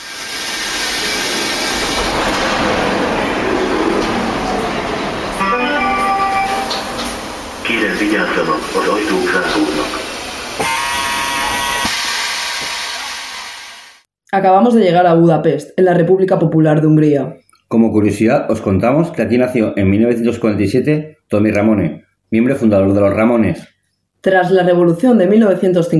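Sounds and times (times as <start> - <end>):
metro train rumbling on rails: 0.0 - 14.0
speech: 8.1 - 10.0, 14.4 - 25.9
metro train motor whine: 10.6 - 14.0.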